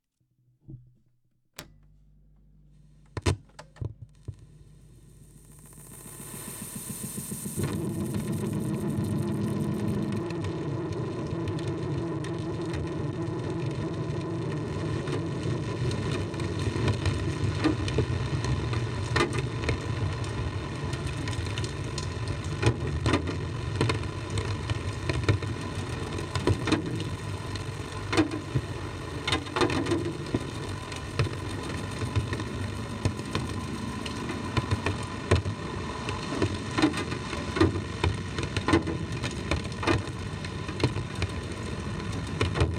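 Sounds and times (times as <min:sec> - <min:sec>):
drums with tape echo: 0:02.7 - 0:09.8, 0:22.7 - 0:41.5
rain: 0:05.2 - 0:42.7.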